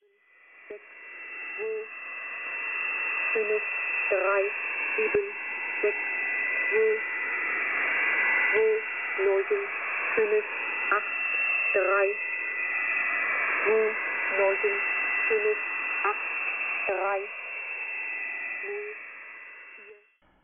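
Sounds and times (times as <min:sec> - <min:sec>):
hissing narrow-band shortwave radio static: 0:00.0 - 0:20.2
speech: 0:00.7 - 0:01.0, 0:03.4 - 0:07.1, 0:08.5 - 0:12.2, 0:13.7 - 0:16.2, 0:16.9 - 0:17.3
flat mechanical voice reading syllables on a shortwave numbers station: 0:01.6 - 0:01.9, 0:03.3 - 0:06.0, 0:06.6 - 0:07.1, 0:08.5 - 0:12.3, 0:13.6 - 0:16.2, 0:16.8 - 0:17.3, 0:18.6 - 0:19.0.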